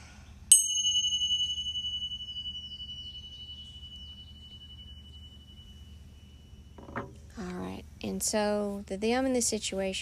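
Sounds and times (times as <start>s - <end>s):
single bright bell struck to clear energy: 0.5s - 7.3s
speech: 8.0s - 10.0s.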